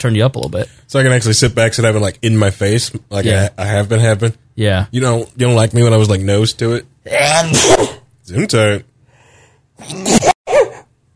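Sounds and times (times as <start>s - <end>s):
speech: 0.0s - 8.9s, 9.8s - 10.3s
person with allergies sneezing: 7.5s - 8.0s, 9.8s - 10.9s.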